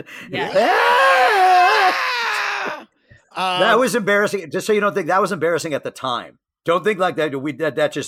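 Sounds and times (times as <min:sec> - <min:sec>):
speech: 0:00.0 - 0:01.4, 0:03.4 - 0:08.0
person imitating a scream from a song: 0:00.4 - 0:03.7.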